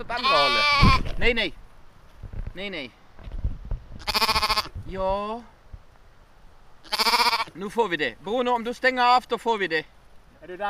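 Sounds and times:
sheep bleating during a sheep hunt in Jomala: 0.0 - 1.0, 4.0 - 4.7, 6.8 - 7.6
speech: 0.0 - 1.6, 2.6 - 3.0, 4.9 - 5.6, 6.8 - 10.6
low noise: 0.0 - 10.6.

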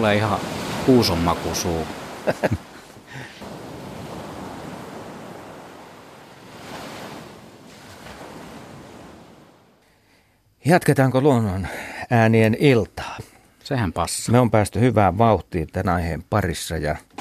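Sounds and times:
speech: 0.0 - 3.4, 10.6 - 17.2
Mediterranean sea waves breaking on shore: 0.0 - 9.8
laughter: 2.2 - 3.3.

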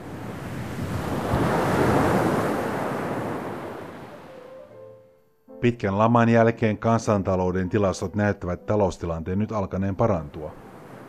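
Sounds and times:
wind rushing across the microphone: 0.0 - 3.8
sea waves washing onto the shore in Greece in sunshine: 0.0 - 4.7, 10.3 - 11.0
speech: 5.6 - 10.6.

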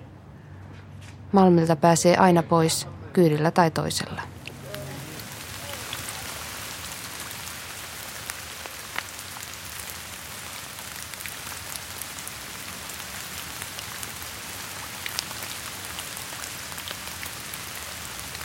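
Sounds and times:
speech: 1.3 - 4.3
rain pattering on hard surfaces at Malmintori square in Malmi: 4.1 - 18.4
sharper rain drips: 4.4 - 18.4.

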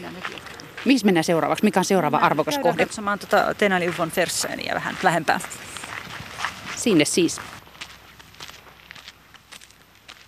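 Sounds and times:
footsteps on natural stone cobblestones with coarse sand between them: 0.0 - 10.2
speech: 0.1 - 5.8, 6.8 - 7.6.

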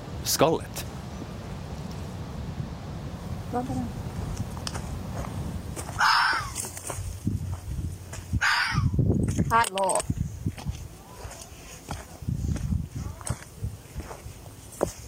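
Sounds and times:
wind outdoors: 0.0 - 15.0
speech: 0.2 - 0.9, 3.5 - 4.0, 9.5 - 10.1
wild animal barking hoarsely outdoors: 5.9 - 6.6, 8.4 - 9.0.

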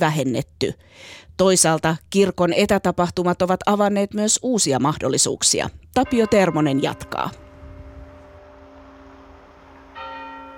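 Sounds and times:
speech: 0.0 - 7.5
church bells ringing during a service in Lavia, Pori: 6.0 - 10.5.

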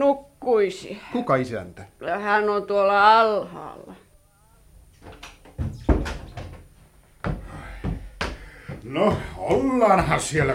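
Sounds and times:
speech: 0.0 - 3.9, 8.9 - 10.5
door being pulled open with a clatter and bump: 5.0 - 6.7
person pounding on a wooden door: 5.0 - 10.5.

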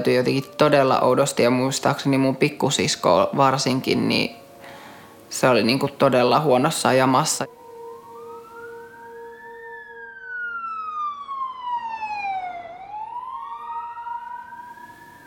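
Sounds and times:
ambulance siren wailing as the ambulance arrives at the scene: 0.0 - 2.3, 4.1 - 5.4, 6.4 - 15.2
speech: 0.0 - 4.4, 5.3 - 7.6.

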